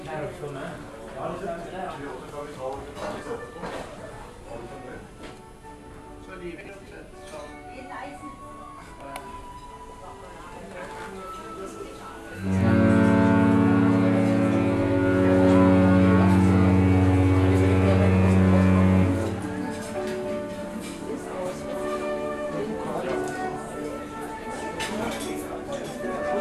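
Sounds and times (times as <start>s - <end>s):
flute in an observation lounge: 7.3s - 26.3s.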